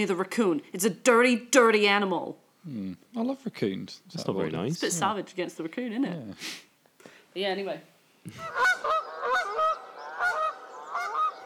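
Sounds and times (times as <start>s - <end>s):
speech: 0.0s - 6.7s, 7.4s - 9.6s
Canada goose honking: 8.4s - 11.4s.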